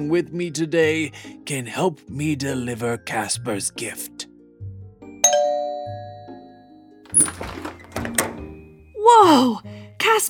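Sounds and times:
speech: 0:00.0 - 0:04.2, 0:09.1 - 0:10.2
doorbell chiming with a bright ringing tone: 0:05.2 - 0:07.0
busy clattering and thumping noises: 0:07.1 - 0:08.5.

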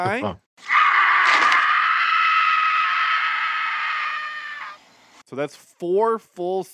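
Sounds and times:
speech: 0:00.0 - 0:00.7, 0:05.3 - 0:06.7
long high-pitched scream from a movie clip: 0:00.6 - 0:04.8.

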